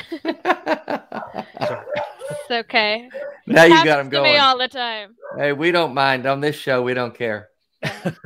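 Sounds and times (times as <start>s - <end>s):
laughter: 0.0s - 2.6s, 7.8s - 8.2s
dog barking in short yaps: 1.1s - 2.5s, 3.1s - 4.0s, 5.2s - 5.5s
speech: 2.5s - 8.2s.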